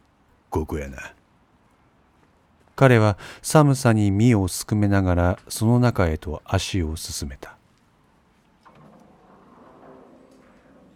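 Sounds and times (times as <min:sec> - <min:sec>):
speech: 0:00.5 - 0:01.2, 0:02.8 - 0:07.6
automatic sliding door opening at the main entrance of a lodging building: 0:08.6 - 0:10.9.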